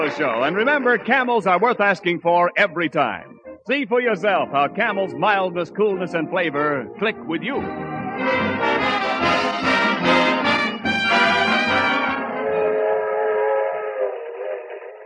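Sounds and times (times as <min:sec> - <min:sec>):
speech: 0:00.1 - 0:10.1
train harmonic whistle or horn: 0:08.6 - 0:14.1.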